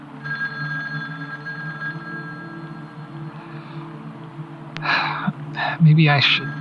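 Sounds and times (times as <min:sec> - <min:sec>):
old landline telephone ringing: 0:00.0 - 0:04.5, 0:06.0 - 0:06.5
low droning hum: 0:00.0 - 0:06.5
speech: 0:05.8 - 0:06.5.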